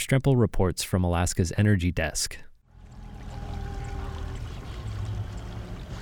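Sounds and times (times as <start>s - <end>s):
speech: 0.0s - 2.5s
small charter boat motor droning coming into Portage Cove harbor in Haines Alaska: 2.7s - 5.9s
water sloshing: 2.7s - 5.9s.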